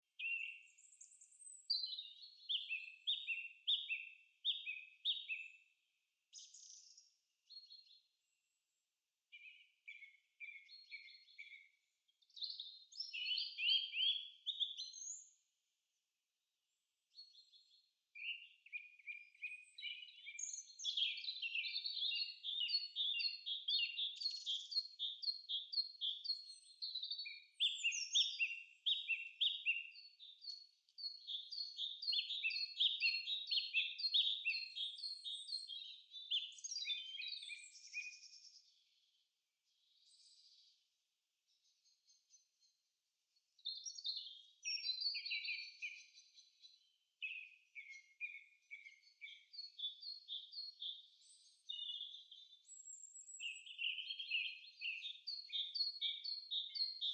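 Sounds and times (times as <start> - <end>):
forest sounds: 0.0 - 15.6, 16.7 - 57.1.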